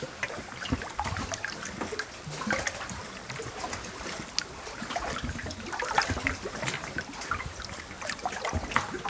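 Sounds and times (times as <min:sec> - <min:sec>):
water at a camp: 0:00.0 - 0:09.0.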